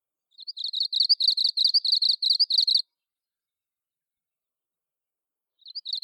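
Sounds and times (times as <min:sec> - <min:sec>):
Japanese leaf warbler song: 0:00.3 - 0:02.8, 0:05.6 - 0:06.0.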